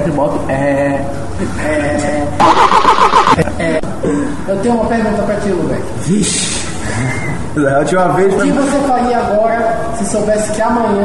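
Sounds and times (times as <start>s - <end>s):
speech: 0.1s - 11.0s
car engine starting: 2.4s - 3.4s.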